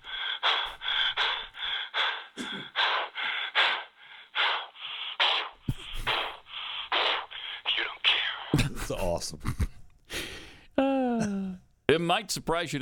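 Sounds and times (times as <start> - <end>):
loud rapid heavy breathing from a played recording: 0.0 - 8.7, 10.1 - 10.7
speech: 8.9 - 9.8, 12.0 - 12.7.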